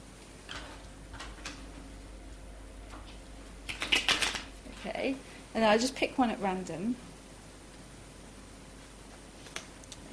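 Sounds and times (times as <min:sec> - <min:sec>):
pack of playing cards being shuffled: 0:03.7 - 0:04.5
speech: 0:05.0 - 0:07.1.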